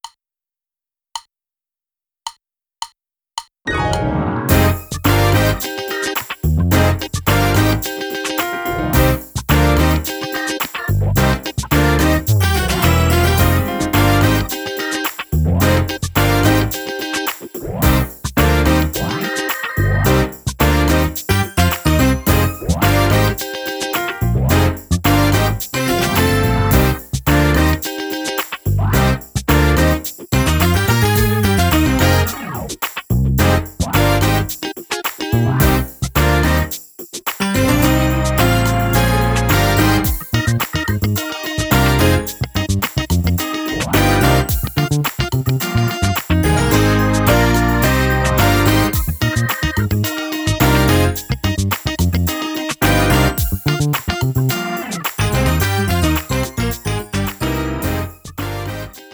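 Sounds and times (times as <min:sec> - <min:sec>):
music without drums: 0:03.7 - 0:59.1.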